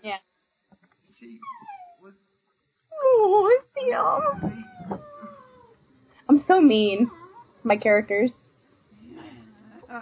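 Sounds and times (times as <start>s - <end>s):
faint hiss: 0.0s - 10.0s
speech: 1.2s - 2.2s, 4.0s - 4.5s, 6.6s - 8.4s
golden retriever puppy whimpering: 1.4s - 2.0s, 3.0s - 5.7s
golden retriever puppy yipping: 1.4s - 2.0s.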